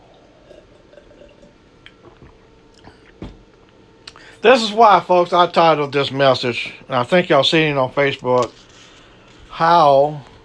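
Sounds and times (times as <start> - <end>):
person sipping a drink with wet slurps: 0.0 - 3.2
speech: 4.4 - 8.6, 9.6 - 10.3.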